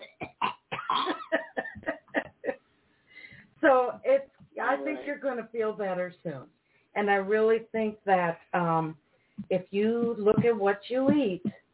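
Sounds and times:
woman coughing harshly: 0.0 - 2.5
speech: 3.7 - 11.6.

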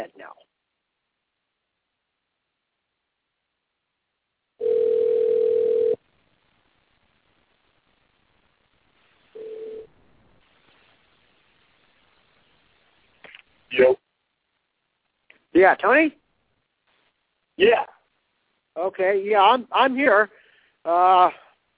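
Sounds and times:
faint noise: 0.0 - 21.7
telephone dial tone after a call is cut off: 4.6 - 6.0
speech: 15.6 - 16.2, 17.6 - 17.9, 18.8 - 21.4.

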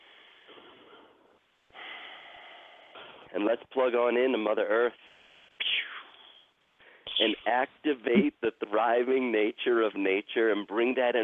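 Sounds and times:
deep breath: 0.0 - 3.3, 5.0 - 7.1
speech: 3.3 - 5.1, 7.2 - 11.2.

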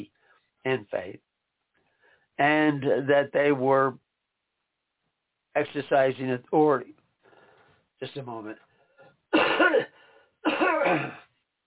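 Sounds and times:
speech: 0.0 - 1.3, 2.4 - 4.0, 5.6 - 7.0, 8.0 - 8.6, 10.5 - 11.2
faint breath: 1.8 - 2.4, 7.2 - 7.9, 9.9 - 10.4
harsh raspy throat clearing: 9.4 - 11.3.

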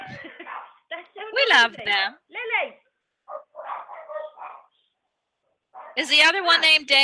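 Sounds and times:
dogs barking at someone at the door: 0.3 - 0.9, 3.3 - 4.8, 5.7 - 6.1
speech: 1.5 - 2.2, 6.0 - 7.0.

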